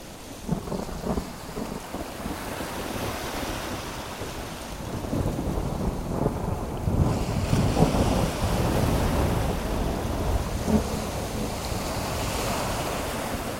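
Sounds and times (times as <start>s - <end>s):
heavy stormy sea waves crashing: 0.0s - 13.5s
strong howling wind rushing over the sea: 0.0s - 13.5s.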